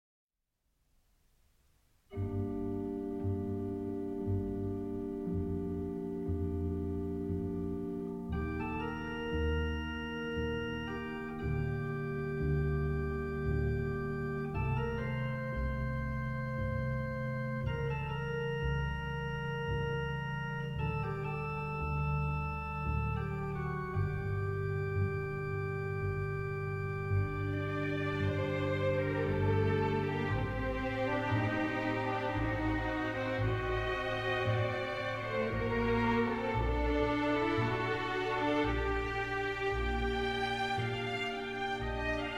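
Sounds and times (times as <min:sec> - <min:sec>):
organ: 0:02.1 - 0:42.3
strings: 0:02.1 - 0:42.3.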